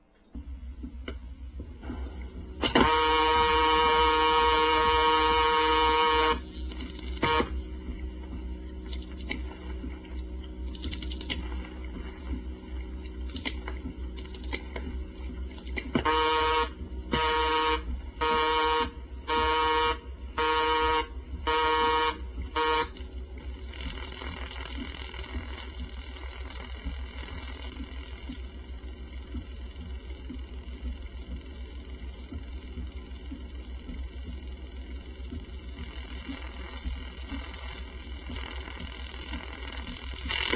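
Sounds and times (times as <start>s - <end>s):
low telephone line hum: 0.0s - 40.5s
telephone busy signal: 2.7s - 6.4s, 7.2s - 7.6s, 16.0s - 23.0s.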